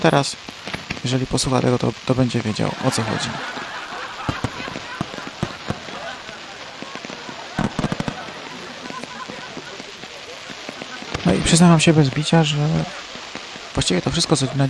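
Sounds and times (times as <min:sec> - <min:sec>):
speech: 0:00.0 - 0:03.8, 0:11.4 - 0:13.0, 0:13.8 - 0:14.6
firecrackers exploding: 0:00.0 - 0:14.6
steady hiss: 0:00.0 - 0:14.6
laughter: 0:02.1 - 0:14.6.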